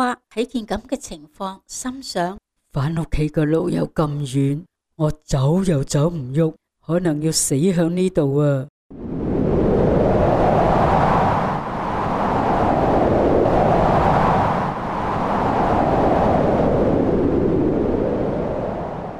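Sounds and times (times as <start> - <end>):
speech: 0.0 - 8.7
strong wind howling in gusts: 8.9 - 19.1.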